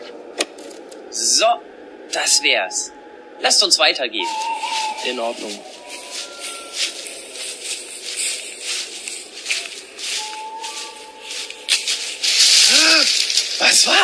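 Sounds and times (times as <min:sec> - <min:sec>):
speech: 0:01.2 - 0:05.8, 0:13.8 - 0:14.0
fox brief wavering cry: 0:01.2 - 0:14.0
fox rustling and crackling through forest undergrowth, snapping leaves and twigs: 0:04.2 - 0:14.0.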